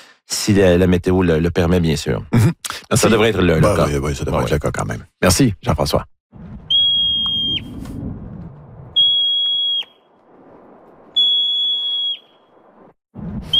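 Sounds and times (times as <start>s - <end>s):
speech: 0.4s - 6.5s
marmot alarm whistle: 6.7s - 7.7s, 9.0s - 10.0s, 11.2s - 12.5s.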